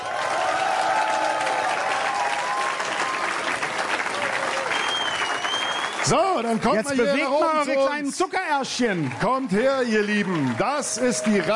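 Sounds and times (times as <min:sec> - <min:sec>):
crowd applauding and cheering for a band coming on stage: 0:00.0 - 0:11.5
whistles from crowd: 0:04.6 - 0:06.1
speech: 0:06.1 - 0:11.5.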